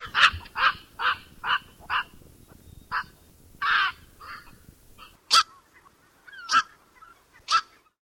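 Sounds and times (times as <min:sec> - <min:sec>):
black-crowned night heron squawking: 0:00.0 - 0:07.9.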